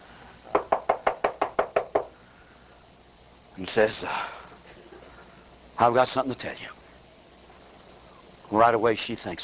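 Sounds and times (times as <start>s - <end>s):
sharp knocks on a door: 0.5s - 2.1s
speech: 3.6s - 4.4s, 5.8s - 6.8s, 8.5s - 9.4s.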